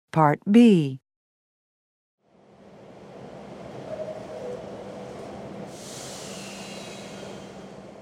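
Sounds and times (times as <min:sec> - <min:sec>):
speech: 0:00.2 - 0:01.0
subway train rumbling during rush hour: 0:02.2 - 0:07.9.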